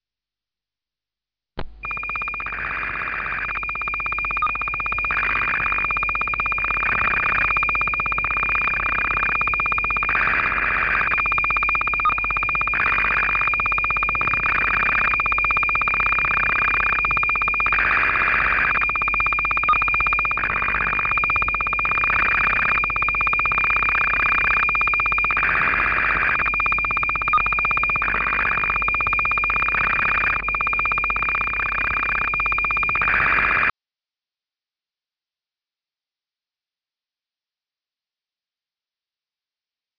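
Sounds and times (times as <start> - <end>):
SSTV signals: 1.8 - 33.7.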